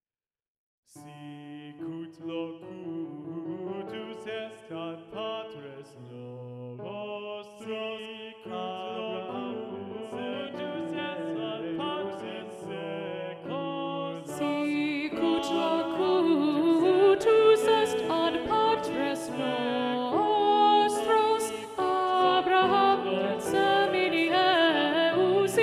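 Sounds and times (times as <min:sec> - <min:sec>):
SATB choir singing with alto predominant: 0:01.0 - 0:25.6.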